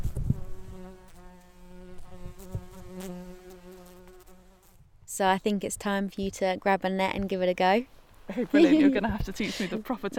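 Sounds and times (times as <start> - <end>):
marked bumblebees buzzing as they are released: 0.0 - 4.8
speech: 5.2 - 10.1
laughter: 8.3 - 10.1.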